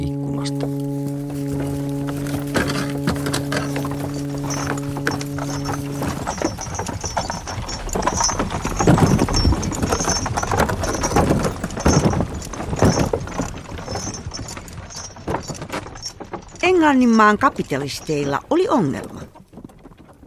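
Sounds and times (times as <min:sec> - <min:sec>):
low sustained hum: 0:00.0 - 0:19.3
horse hooves clip-clopping in a busy street: 0:00.1 - 0:20.2
speech: 0:00.4 - 0:00.8, 0:16.9 - 0:19.1
metal jingling: 0:00.5 - 0:20.2.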